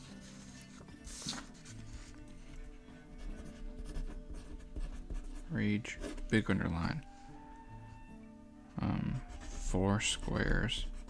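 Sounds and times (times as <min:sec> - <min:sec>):
pen scratching on paper: 0:00.0 - 0:06.6, 0:09.0 - 0:11.0
speech: 0:05.5 - 0:07.1, 0:09.8 - 0:11.0.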